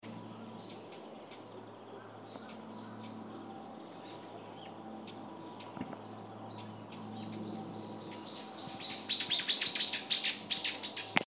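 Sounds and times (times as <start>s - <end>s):
Japanese bush warbler singing: 0.0s - 11.2s.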